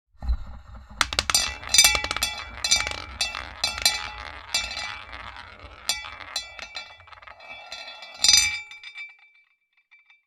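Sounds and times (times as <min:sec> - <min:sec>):
roulette wheel spinning: 0:01.0 - 0:08.9.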